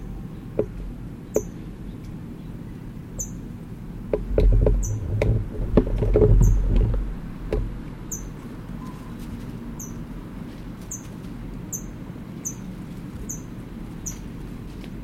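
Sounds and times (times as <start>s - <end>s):
adult bird chipping at the nest with food in its bill: 0.0s - 3.5s, 6.4s - 6.7s, 8.1s - 9.2s, 9.8s - 10.0s, 10.9s - 11.1s, 11.7s - 14.3s
low steady rumble: 0.0s - 15.0s.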